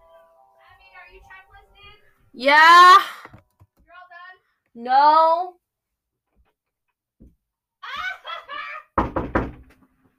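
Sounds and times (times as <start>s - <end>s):
speech: 1.1s - 3.2s, 4.8s - 5.6s
laughter: 7.8s - 9.0s
single solid knock on a wooden door: 9.0s - 9.8s.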